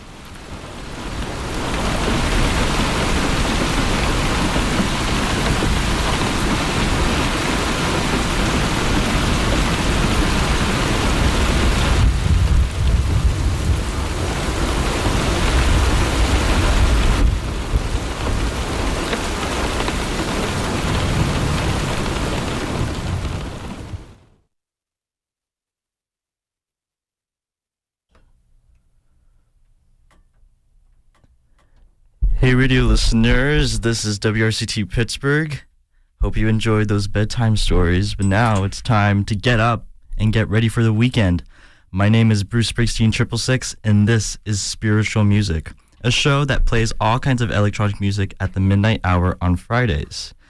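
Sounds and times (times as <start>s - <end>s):
steady dense rainfall: 0.0s - 24.3s, 32.3s - 35.5s, 36.4s - 50.4s
low rolling rumble of distant thunder: 0.5s - 24.2s, 32.2s - 34.1s
speech: 32.5s - 50.4s.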